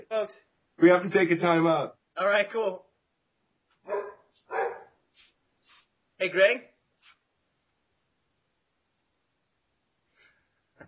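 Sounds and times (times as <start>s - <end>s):
speech: 0.1s - 2.9s, 6.2s - 6.7s
dog barking excitedly: 3.8s - 5.0s.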